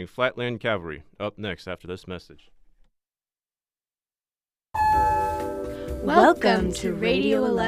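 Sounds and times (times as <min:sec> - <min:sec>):
speech: 0:00.0 - 0:02.6, 0:06.0 - 0:07.6
newly repaired elevator arrival chime: 0:04.8 - 0:06.0.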